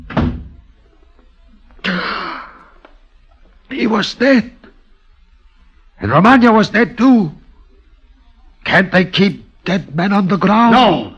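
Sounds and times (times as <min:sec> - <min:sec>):
door shutting with thud and bang: 0:00.0 - 0:00.6
speech: 0:03.7 - 0:04.6, 0:06.0 - 0:07.4, 0:08.6 - 0:11.1.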